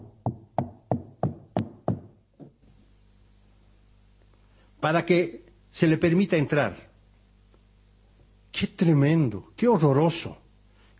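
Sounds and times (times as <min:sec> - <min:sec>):
knocking on a door: 0:00.1 - 0:02.6
speech: 0:04.8 - 0:06.9, 0:08.6 - 0:10.4.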